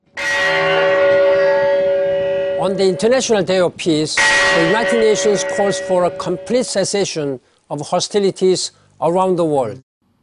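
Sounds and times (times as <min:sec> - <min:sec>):
peace bell struck for the International Day of Peace: 0:00.2 - 0:03.6, 0:04.2 - 0:07.2
speech: 0:02.6 - 0:09.8.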